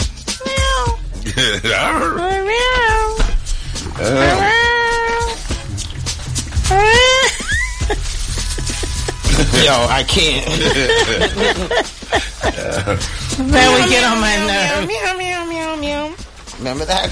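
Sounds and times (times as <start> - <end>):
several cats meowing and caterwauling: 0.3 - 1.1, 1.8 - 5.8, 6.6 - 9.9, 13.6 - 14.9
laughter: 1.2 - 2.2, 6.8 - 15.0
speech: 1.4 - 2.8, 4.0 - 4.6, 9.6 - 17.1.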